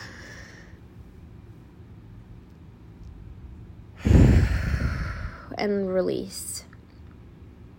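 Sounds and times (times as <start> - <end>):
big deep inhale: 0.0 - 0.8, 4.0 - 5.5
speech: 5.6 - 6.6.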